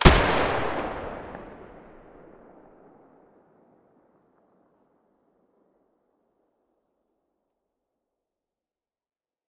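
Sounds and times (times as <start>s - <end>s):
AK-105 rifle muzzle blast: 0.0s - 2.5s.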